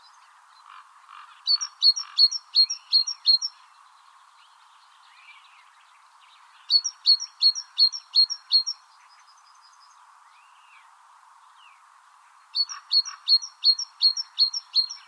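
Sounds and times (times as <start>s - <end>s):
great tit Parus major song: 1.3s - 4.3s, 6.4s - 9.4s, 12.5s - 15.0s.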